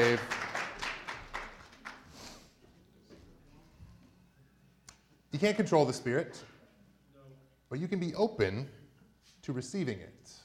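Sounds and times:
speech: 0:00.0 - 0:00.4, 0:05.3 - 0:06.5, 0:07.7 - 0:08.8, 0:09.4 - 0:10.4
scattered audience applause for a volunteer: 0:00.0 - 0:02.2.

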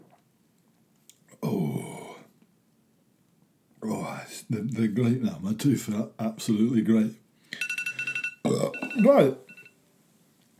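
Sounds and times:
speech: 0:04.5 - 0:07.2, 0:08.5 - 0:09.5
phone alarm with short high electronic beeps: 0:07.6 - 0:09.8.

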